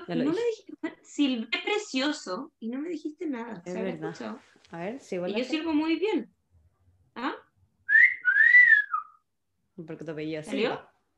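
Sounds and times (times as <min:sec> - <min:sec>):
speech: 0:00.1 - 0:06.4, 0:07.2 - 0:07.4, 0:09.8 - 0:10.9
person whistling a short two-part tune: 0:07.9 - 0:09.3.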